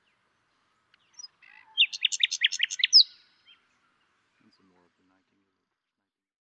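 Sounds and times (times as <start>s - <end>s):
common nightingale Luscinia megarhynchos song phrase: 0.9s - 5.6s.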